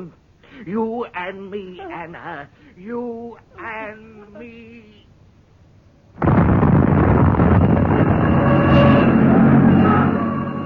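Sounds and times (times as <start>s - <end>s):
speech: 0.0s - 5.1s
gas main explosion: 6.2s - 10.0s
loud steady continuous roar and rumble of gas main fire: 6.8s - 10.6s.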